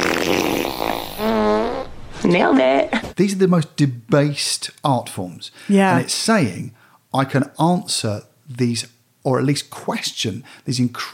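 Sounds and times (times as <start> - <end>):
fart noise: 0.0 - 2.0
speech: 0.3 - 11.1.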